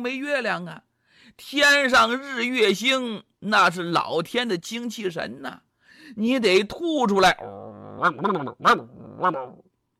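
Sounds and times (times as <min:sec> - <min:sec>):
speech: 0:00.0 - 0:09.6
human voice imitating yelping dog barks: 0:07.2 - 0:09.7.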